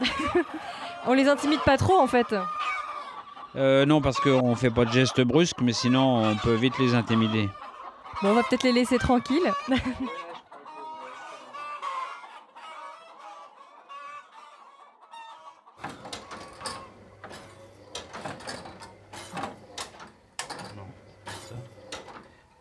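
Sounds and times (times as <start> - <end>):
laughter: 0.0 - 1.8, 8.2 - 11.4
hens clucking on an egg farm: 0.0 - 22.6
speech: 0.4 - 2.6, 3.5 - 7.6, 8.2 - 10.2
clattering mechanical hum: 15.8 - 22.6.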